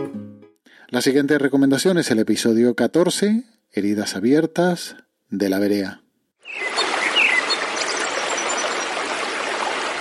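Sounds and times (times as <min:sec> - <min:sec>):
speech: 0:00.9 - 0:06.6
faint bird chirps: 0:06.4 - 0:09.0
stream of running water flowing: 0:06.4 - 0:09.9.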